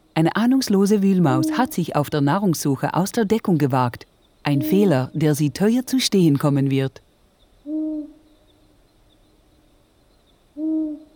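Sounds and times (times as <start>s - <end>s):
speech: 0.2s - 7.0s
long-eared owl hooting: 0.9s - 2.0s, 7.6s - 8.4s, 10.6s - 11.1s.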